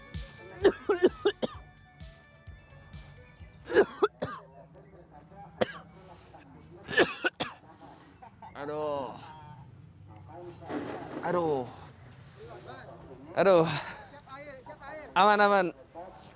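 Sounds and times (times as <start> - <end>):
person coughing from charcoal ash: 0.6 - 1.6, 3.7 - 4.4, 5.6 - 5.9, 6.9 - 7.6
speech: 13.4 - 13.8, 15.2 - 15.8.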